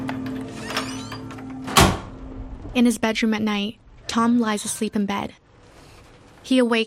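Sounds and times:
apartment door being unlocked and opened: 0.0 - 2.1
loud thunk: 1.7 - 2.2
steady low hum: 1.9 - 6.4
speech: 2.8 - 5.4, 6.4 - 6.8.

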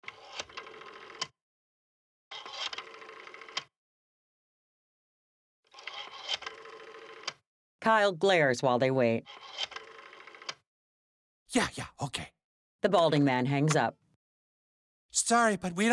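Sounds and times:
rotary phone being dialed with rattling whirring clatter: 0.0 - 1.4, 2.3 - 3.7, 5.7 - 7.4, 9.2 - 10.6
speech: 7.8 - 9.7, 11.6 - 14.0, 15.1 - 15.9.

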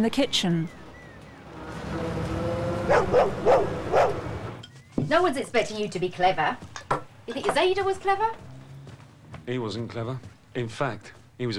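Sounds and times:
speech: 0.0 - 0.8, 2.9 - 4.1, 5.1 - 8.4, 9.5 - 11.5
Alsatian dog barking: 1.7 - 4.6.

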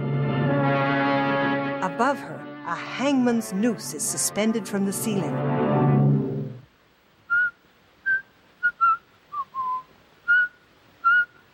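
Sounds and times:
low rumbling noise: 0.0 - 6.8
speech: 1.8 - 5.8
person whistling in a billiard room: 7.3 - 11.4.

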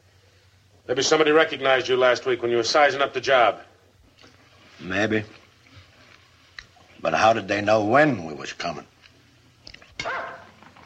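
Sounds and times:
speech: 0.9 - 3.7, 4.8 - 5.4, 7.0 - 8.9
dog barking with faint yips: 10.0 - 10.6.

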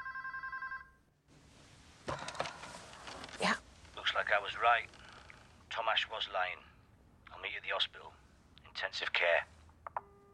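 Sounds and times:
bedside telephone ringing with a trilling electronic tone: 0.0 - 1.0
speech: 4.3 - 5.0, 5.8 - 6.7, 7.4 - 8.2, 8.8 - 9.5.

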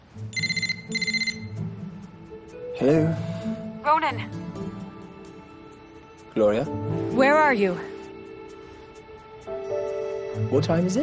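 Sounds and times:
telephone ringing with warbling electronic trill: 0.3 - 1.6
speech: 2.8 - 3.3, 3.9 - 4.5, 6.4 - 7.9, 10.4 - 11.0.

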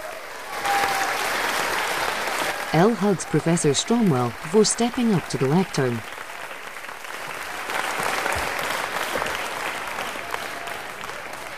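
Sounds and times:
students applauding: 0.0 - 11.5
speech: 2.7 - 6.2.

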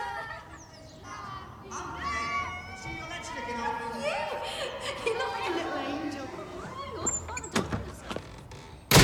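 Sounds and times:
laughter: 0.0 - 1.5, 3.9 - 7.2
chatter: 0.0 - 8.9
front door shutting: 7.0 - 9.0.

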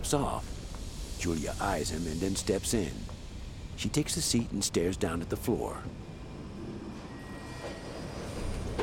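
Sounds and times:
speech: 0.0 - 0.6, 1.2 - 3.2, 3.8 - 6.0
metro train rumbling as it slows: 0.0 - 8.8
metro train doors clunk opening: 7.0 - 8.8.

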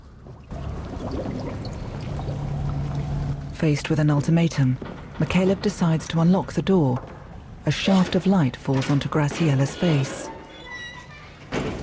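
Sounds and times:
man diving into water from railings: 0.4 - 3.4
speech: 3.6 - 10.3.

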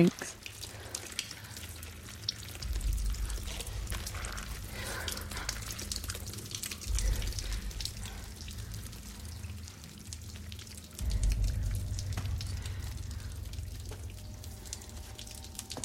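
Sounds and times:
water trickling down through a rock fissure in a cave: 0.0 - 15.8.

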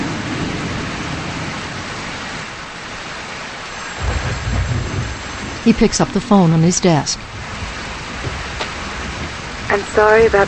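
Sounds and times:
heavy rain downpour: 0.0 - 10.4
deep low rumble: 4.0 - 10.4
speech: 5.6 - 7.3, 9.7 - 10.4.

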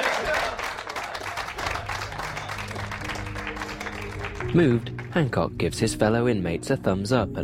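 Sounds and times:
small group clapping: 0.0 - 5.4
speech: 4.5 - 7.4.

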